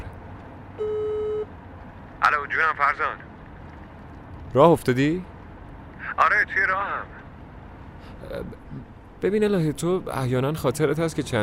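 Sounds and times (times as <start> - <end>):
low hum: 0.0 - 11.4
outgoing phone call ringing tone through a speakerphone: 0.8 - 1.5
speech: 2.3 - 3.3, 4.5 - 5.3, 6.2 - 7.2, 8.2 - 8.6, 9.2 - 11.4.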